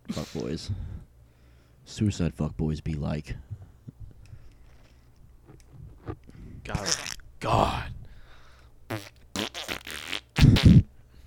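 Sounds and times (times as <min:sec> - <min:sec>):
speech: 0:00.1 - 0:01.0, 0:01.8 - 0:03.6, 0:06.7 - 0:07.9
fart noise: 0:06.8 - 0:07.2, 0:08.9 - 0:10.9.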